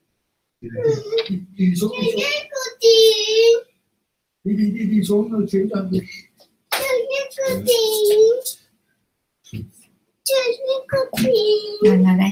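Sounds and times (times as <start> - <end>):
speech: 0.6 - 3.7, 4.4 - 6.3, 10.4 - 12.3
small child babbling: 0.7 - 3.7, 6.0 - 8.6, 10.3 - 12.0.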